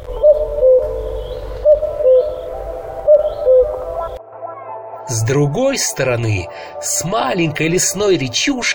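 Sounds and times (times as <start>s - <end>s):
cuckoo calling: 0.0s - 4.2s
speech: 5.1s - 8.7s.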